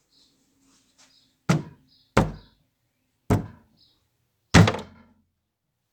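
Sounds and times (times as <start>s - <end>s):
high tom drum hits: 1.5s - 2.4s, 3.3s - 3.6s, 4.6s - 4.9s.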